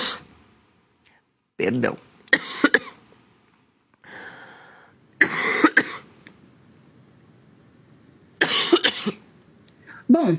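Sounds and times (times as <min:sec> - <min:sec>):
speech: 0:01.6 - 0:02.6, 0:10.2 - 0:10.3
person in harsh coughing fit: 0:02.3 - 0:03.0, 0:05.2 - 0:06.1, 0:08.4 - 0:09.2.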